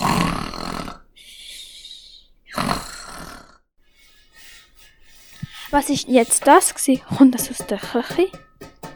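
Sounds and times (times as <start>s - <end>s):
loud snoring: 0.0s - 1.1s, 2.5s - 3.7s
speech: 5.7s - 8.4s.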